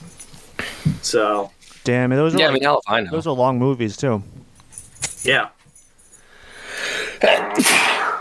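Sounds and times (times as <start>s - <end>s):
speech: 1.0s - 4.4s, 5.2s - 5.6s, 7.2s - 7.9s
person sneezing: 7.0s - 8.2s.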